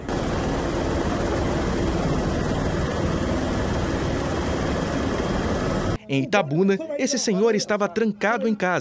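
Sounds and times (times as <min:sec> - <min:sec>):
police helicopter flying during rescue: 0:00.0 - 0:06.0
speech: 0:06.1 - 0:08.8.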